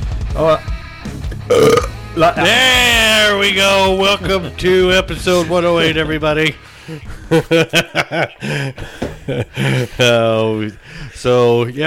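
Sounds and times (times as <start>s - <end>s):
speech: 0.4s - 0.7s, 1.5s - 11.8s
loud rough burp: 1.3s - 2.0s
laughter: 3.7s - 6.2s, 6.8s - 10.8s.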